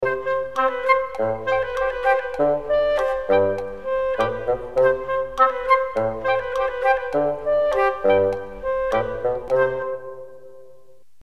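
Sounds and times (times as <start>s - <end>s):
happy woodwind music: 0.0s - 10.9s.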